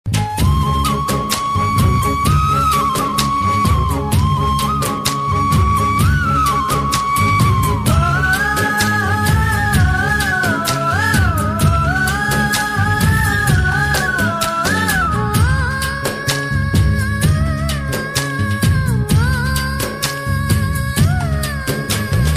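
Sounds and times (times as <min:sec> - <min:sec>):
flute background music ringtone: 0:00.1 - 0:22.3.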